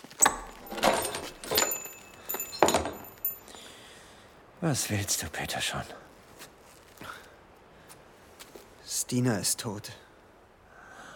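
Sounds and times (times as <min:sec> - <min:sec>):
door being pulled open: 0:00.2 - 0:03.1
keys jingling: 0:00.2 - 0:03.5
lock clicking and rattling: 0:00.2 - 0:03.5
speech: 0:04.6 - 0:06.1, 0:09.1 - 0:10.1.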